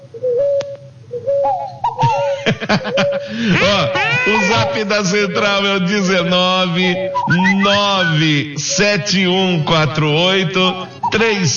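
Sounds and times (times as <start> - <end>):
low hum: 0.0 - 11.5
bird singing whistled phrases outside: 0.1 - 2.1, 6.2 - 9.2, 10.6 - 11.4
laughter: 2.0 - 5.6, 7.3 - 8.2
speech: 2.6 - 11.5.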